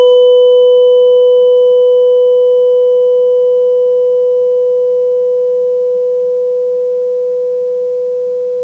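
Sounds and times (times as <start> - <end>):
tuning forks: 0.0 - 8.5.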